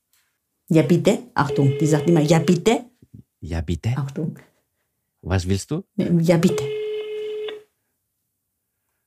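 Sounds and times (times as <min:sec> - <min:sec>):
speech: 0:00.7 - 0:04.5, 0:05.2 - 0:06.8
telephone dialing and ringing tone: 0:01.4 - 0:02.7, 0:06.4 - 0:07.7.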